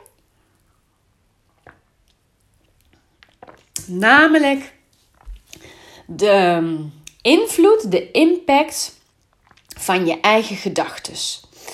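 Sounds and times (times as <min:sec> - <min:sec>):
swallow-like squish: 0:01.4 - 0:03.9
quiet sip from a drink with a small slurp: 0:01.4 - 0:04.0
speech: 0:03.9 - 0:04.8, 0:06.1 - 0:09.0, 0:09.8 - 0:11.5.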